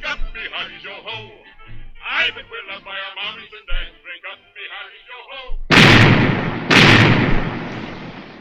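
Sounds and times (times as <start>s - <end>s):
cannon firing a broadside: 5.7s - 8.3s.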